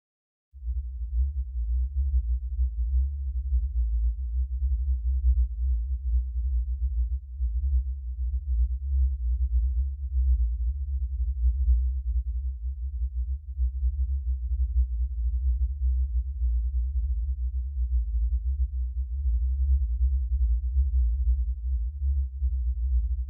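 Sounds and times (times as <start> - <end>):
62Hz subwoofer phase test tone: 0.6 - 23.2.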